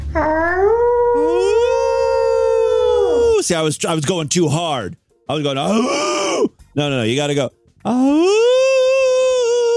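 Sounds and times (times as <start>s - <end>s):
person imitating a wolf howl: 0.1s - 3.4s, 5.7s - 6.5s, 7.9s - 9.7s
speech: 3.5s - 8.6s.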